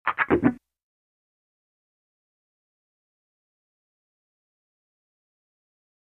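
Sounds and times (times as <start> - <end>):
fast wah funk guitar: 0.1 - 0.6.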